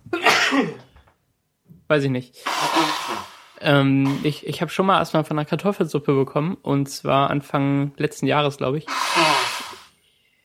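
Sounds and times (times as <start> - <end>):
sneeze: 0.2 - 0.9, 2.4 - 4.4, 8.9 - 9.9
speech: 0.5 - 0.8, 1.9 - 9.4.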